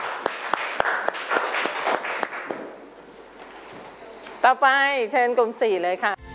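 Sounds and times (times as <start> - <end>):
small group clapping for a student group: 0.0 - 2.8
speech: 4.4 - 6.2.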